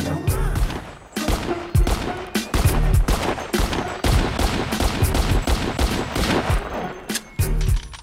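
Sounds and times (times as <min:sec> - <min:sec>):
gun fired repeatedly and emptied at a deserted firing range: 0:00.6 - 0:06.9.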